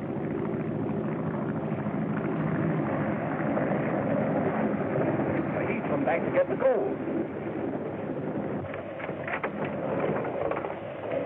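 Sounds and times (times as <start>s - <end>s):
propeller airplane engine droning: 0.0s - 11.2s
speech: 6.1s - 7.1s.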